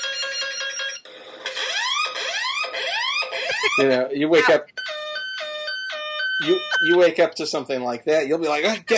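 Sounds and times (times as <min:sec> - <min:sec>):
submarine emergency alarm blaring: 0:00.1 - 0:03.8, 0:04.7 - 0:07.0
speech: 0:03.8 - 0:04.8, 0:06.4 - 0:08.9.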